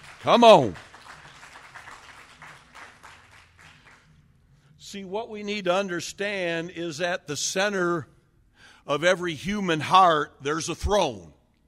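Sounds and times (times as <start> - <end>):
crowd clapping in sustained applause: 0.0 - 4.2
speech: 0.2 - 0.8, 4.9 - 8.1, 8.8 - 11.4.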